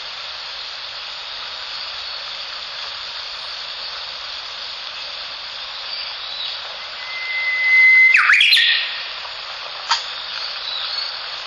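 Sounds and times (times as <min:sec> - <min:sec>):
steady hiss: 0:00.0 - 0:11.4
Japanese bush warbler singing: 0:05.6 - 0:09.3, 0:10.1 - 0:11.3.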